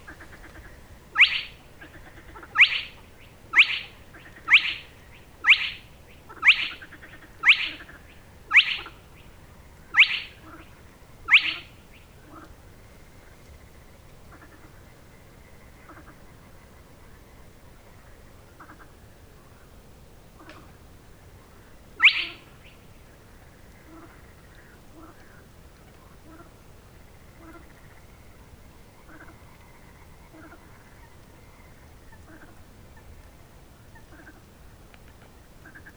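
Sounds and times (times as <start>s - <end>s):
Tuepfelsumpfhuhn spotted crake at Ammersee Sued: 0.1s - 9.0s, 22.0s - 22.5s.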